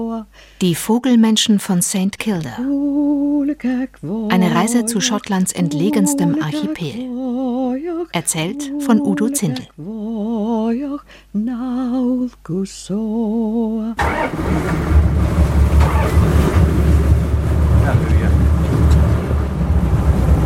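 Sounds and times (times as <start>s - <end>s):
speech: 0.0s - 15.2s
fast seaworthy motorboat engine roar at sea: 14.0s - 20.4s
rushing wind at sea: 14.1s - 20.4s.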